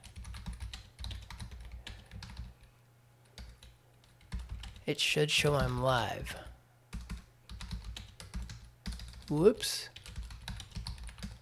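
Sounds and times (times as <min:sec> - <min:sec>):
typing on a computer keyboard: 0:00.0 - 0:02.6, 0:03.4 - 0:04.8, 0:06.9 - 0:11.3
low steady hum: 0:00.0 - 0:11.3
speech: 0:04.9 - 0:06.5, 0:09.3 - 0:09.9.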